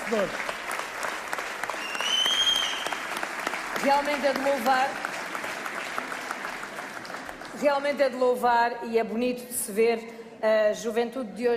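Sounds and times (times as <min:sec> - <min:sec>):
audience applause at a fado performance: 0:00.0 - 0:07.6
speech: 0:00.1 - 0:00.5, 0:03.8 - 0:05.1, 0:07.6 - 0:11.5.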